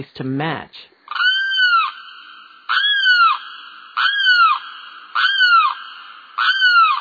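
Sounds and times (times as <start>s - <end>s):
speech: 0.0s - 1.0s
limpkin giving eerie wailing cries: 1.1s - 7.0s.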